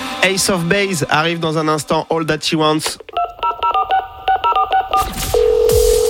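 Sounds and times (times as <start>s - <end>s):
speech: 0.2s - 3.1s
DTMF touch-tone keypad beeps of a telephone number being dialed: 3.2s - 6.0s.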